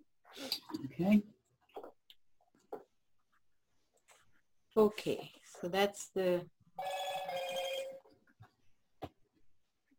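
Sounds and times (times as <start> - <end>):
speech: 0.4 - 1.4, 4.8 - 6.6
phone ringing with an electronic trill: 6.8 - 8.1.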